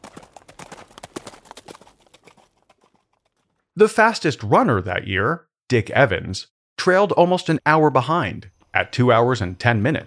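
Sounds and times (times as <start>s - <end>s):
horse hooves clip-clopping: 0.0s - 3.7s
speech: 3.8s - 10.0s.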